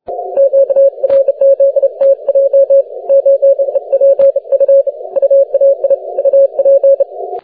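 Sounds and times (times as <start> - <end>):
40m continuous wave radio tone: 0.0 - 7.4.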